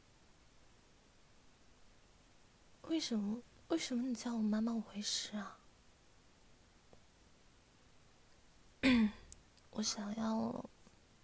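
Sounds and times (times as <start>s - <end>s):
speech: 2.9s - 5.6s, 9.8s - 10.7s
short rough cough or throat-clearing: 8.8s - 9.3s.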